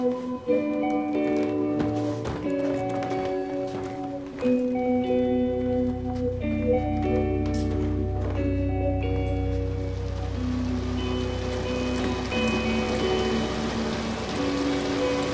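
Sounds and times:
sustained musical tones: 0.0s - 15.3s
rain falling on a city street: 9.7s - 15.3s.

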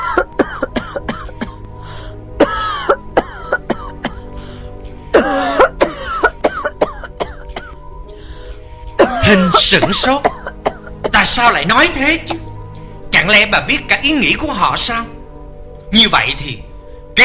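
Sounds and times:
old woman's violent coughing fit: 0.0s - 1.6s, 2.4s - 4.3s, 5.1s - 7.8s, 9.0s - 11.2s
speech: 9.3s - 10.3s, 11.2s - 12.4s, 13.3s - 15.1s, 15.9s - 17.2s.

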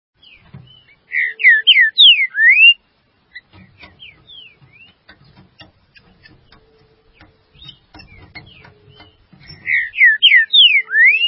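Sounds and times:
Green-winged saltator song: 1.1s - 2.8s, 8.5s - 11.2s.

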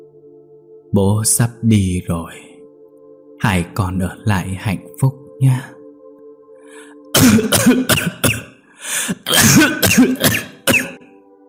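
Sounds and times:
speech: 0.9s - 2.5s, 3.4s - 5.8s, 6.7s - 10.5s
old man near death coughing violently: 7.1s - 11.0s
old man near death gasping: 8.7s - 9.3s.

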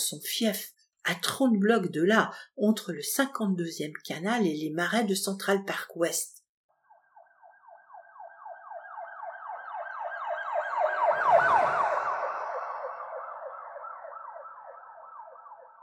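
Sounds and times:
speech: 0.1s - 6.4s
wailing siren of a passing shuttle vehicle: 6.8s - 15.8s
low rumble: 11.0s - 13.8s.

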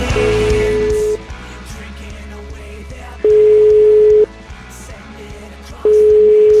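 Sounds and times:
telephone ringing tone while a call is dialled: 0.1s - 1.2s, 3.3s - 4.3s, 5.9s - 6.5s.

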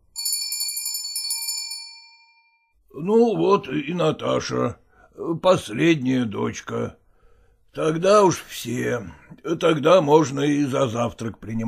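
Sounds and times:
doorbell ringing with a bright high tinkling chime: 0.1s - 2.8s
speech: 3.0s - 7.0s, 7.7s - 11.6s.

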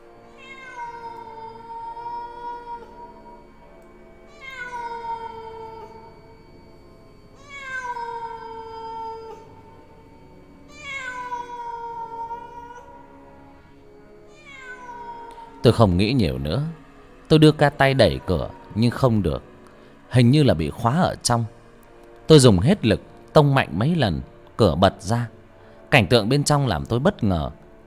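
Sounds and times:
cat meowing behind a closed bathroom door: 0.3s - 3.5s, 4.3s - 6.3s, 7.4s - 10.0s, 10.6s - 13.6s, 14.3s - 15.9s, 17.9s - 19.0s
speech: 15.6s - 19.5s, 20.1s - 21.6s, 22.3s - 27.6s.

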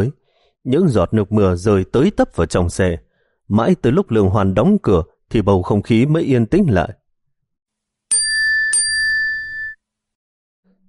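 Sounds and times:
speech: 0.0s - 7.0s
phone message notification chime for an incoming chat message: 8.1s - 9.8s.

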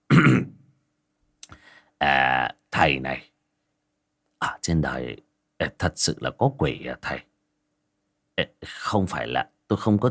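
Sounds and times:
man clearing his throat after sitting down with tea: 0.0s - 0.6s
speech: 2.8s - 3.3s, 4.7s - 7.3s, 8.4s - 10.0s.

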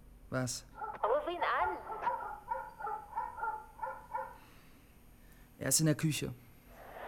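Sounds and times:
speech: 0.3s - 2.1s, 5.6s - 6.5s
recorded dogs barking from loudspeakers hidden in hedges: 0.8s - 1.1s, 1.7s - 4.4s.

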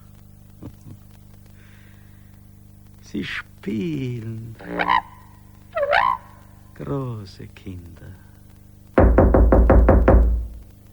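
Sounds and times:
speech: 3.1s - 5.1s, 6.8s - 8.3s
knocking on a house door: 9.0s - 10.7s.

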